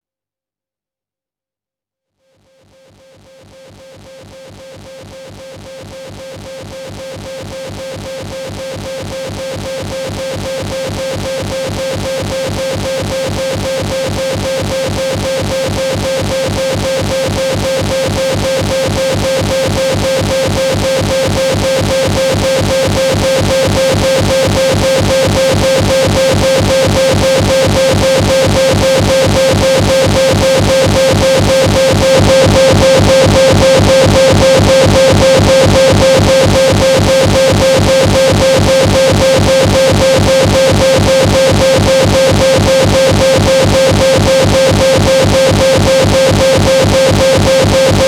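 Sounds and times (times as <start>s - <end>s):
noise: 2.3s - 48.0s
drone loop: 21.6s - 48.0s.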